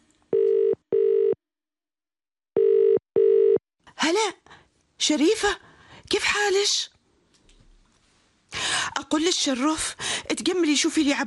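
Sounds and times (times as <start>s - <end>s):
ringback tone of an outgoing phone call: 0.3s - 1.4s, 2.6s - 3.6s
speech: 4.1s - 6.9s, 9.1s - 11.2s.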